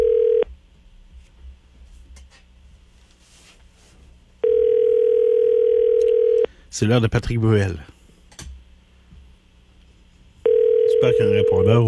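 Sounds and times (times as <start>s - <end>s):
ringing tone on a call to a mobile number in France: 0.0s - 0.5s, 4.4s - 6.5s, 10.4s - 11.8s
speech: 6.8s - 8.0s, 11.0s - 11.8s.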